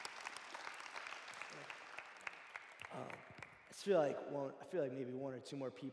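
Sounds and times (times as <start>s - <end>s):
audience applause: 0.0s - 3.6s
speech: 2.9s - 5.9s.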